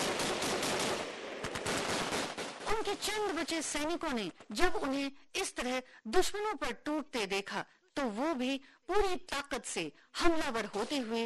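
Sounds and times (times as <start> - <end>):
light machine gun firing bursts in battle: 0.0 - 3.4
speech: 2.8 - 11.2.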